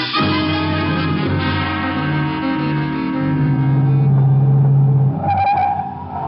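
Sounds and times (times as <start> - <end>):
car engine roaring at high speed overtaking a train: 0.2 - 6.2
car tire squeal: 3.5 - 6.2.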